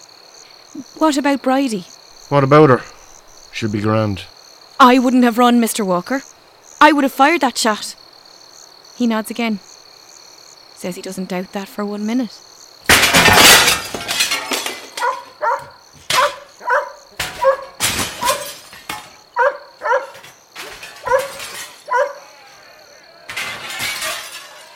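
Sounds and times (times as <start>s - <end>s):
speech: 0.8s - 3.0s, 3.6s - 8.0s, 9.0s - 9.7s, 10.8s - 12.5s
sharp crashing noises: 12.8s - 16.5s, 17.1s - 19.3s, 20.0s - 21.9s, 23.2s - 24.7s
dog barking frantically: 15.0s - 18.6s, 19.3s - 20.2s, 21.0s - 22.3s.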